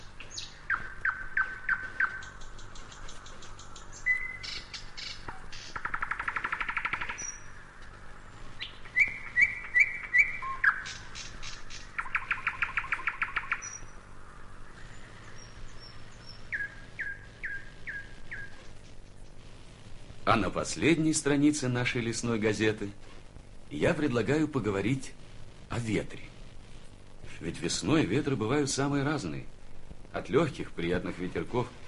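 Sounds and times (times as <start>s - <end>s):
nightingale singing whistles, trills and clicking runs: 0.0s - 18.9s
speech: 20.3s - 23.0s, 23.8s - 25.2s, 25.8s - 26.3s, 27.4s - 29.5s, 30.1s - 31.8s.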